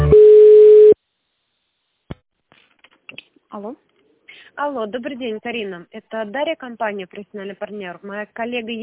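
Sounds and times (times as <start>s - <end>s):
buzzing multi-pitched telephone line tone during call transfer: 0.1s - 0.9s
speech: 4.7s - 8.8s.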